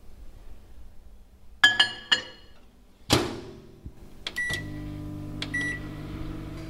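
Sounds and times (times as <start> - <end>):
microwave oven humming while melting chocolate and butter in a bowl: 4.2 - 6.6
microwave oven keypad beeps: 4.4 - 4.8, 5.5 - 6.0.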